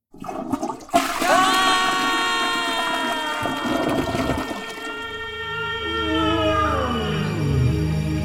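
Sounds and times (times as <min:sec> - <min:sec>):
toilet flushing: 0:00.1 - 0:05.2
tonal whining pipes: 0:00.6 - 0:08.1.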